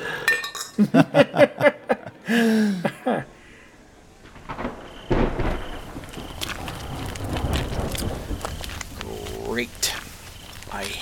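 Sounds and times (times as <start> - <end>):
speech: 0.8 - 1.5
laughter: 0.8 - 3.3
steady rain hissing: 2.0 - 10.9
low distant rumble of thunder: 4.1 - 10.9
person's voice: 9.0 - 10.1, 10.7 - 10.9.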